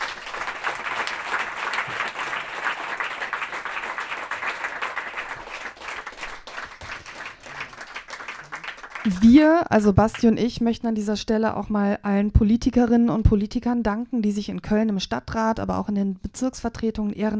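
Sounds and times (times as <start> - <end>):
audience applause: 0.0 - 9.5
speech: 9.1 - 17.3.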